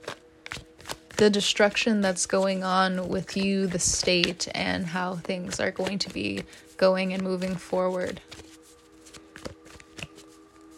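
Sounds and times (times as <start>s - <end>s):
low steady hum: 0.0s - 10.7s
tarot cards flicking and rustling during a reading: 0.0s - 10.7s
speech: 1.2s - 8.3s.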